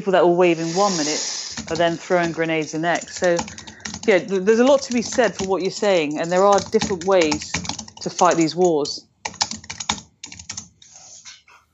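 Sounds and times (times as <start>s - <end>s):
speech: 0.0s - 9.1s
fast typing on a computer keyboard: 1.5s - 10.8s.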